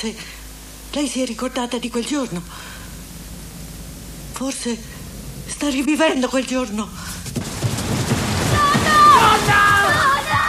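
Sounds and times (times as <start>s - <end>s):
speech: 0.0s - 2.8s, 4.4s - 4.9s, 5.5s - 7.2s
heavy rain in a film scene: 7.1s - 10.4s.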